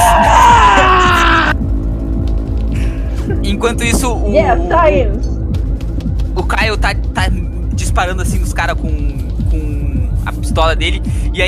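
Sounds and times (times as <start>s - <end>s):
man screaming in pain: 0.0s - 1.6s
low rumbling background: 0.0s - 11.4s
speech: 3.6s - 5.3s, 6.4s - 11.4s.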